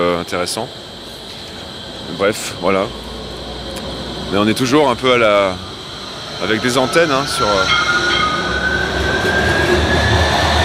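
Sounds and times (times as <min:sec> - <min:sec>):
speech: 0:00.2 - 0:01.0, 0:02.1 - 0:03.1, 0:04.3 - 0:05.7, 0:06.4 - 0:08.1
two trams crossing each other: 0:00.7 - 0:10.6
thin sustained metallic squeal from tram wheels: 0:04.7 - 0:10.6.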